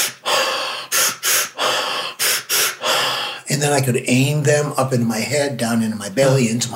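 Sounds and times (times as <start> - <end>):
sharp forceful sniffing breath inhales: 0.0 - 3.5
speech: 3.5 - 6.7.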